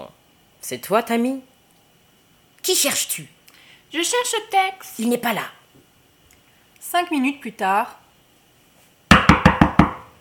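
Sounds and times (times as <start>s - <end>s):
speech: 0.6s - 1.5s, 2.6s - 5.6s, 6.8s - 8.0s
firm knocking on a door: 9.1s - 10.1s.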